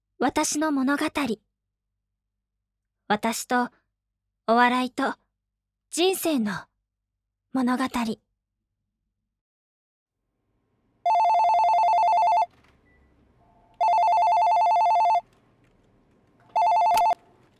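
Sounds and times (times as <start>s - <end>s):
speech: 0.2s - 1.5s, 3.1s - 3.8s, 4.5s - 5.2s, 5.9s - 6.7s, 7.5s - 8.2s
faint room noise: 10.4s - 17.5s
telephone ringing with electronic trill: 11.0s - 13.2s, 13.8s - 15.3s, 16.5s - 17.2s.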